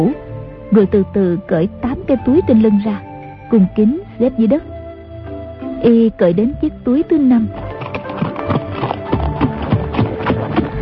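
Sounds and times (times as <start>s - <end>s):
speech: 0.0s - 4.7s, 5.8s - 7.7s
hoofbeats of a galloping horse with a rider: 7.0s - 10.7s.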